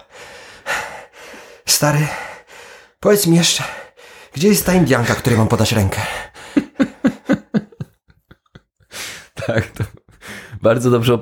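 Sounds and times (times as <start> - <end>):
person imitating out-of-breath panting: 0.0 - 3.0, 3.7 - 4.4, 6.0 - 7.6, 8.8 - 9.4, 10.1 - 10.6
speech: 1.7 - 2.2, 3.0 - 3.8, 4.4 - 6.3, 9.5 - 9.7, 10.6 - 11.2
laughter: 6.2 - 10.2.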